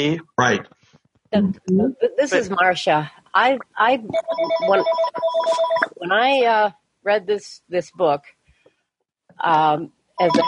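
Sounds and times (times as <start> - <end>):
speech: 0.0 - 8.4, 9.4 - 10.4
telephone ringing with an electronic tone: 4.1 - 6.1, 10.2 - 10.4.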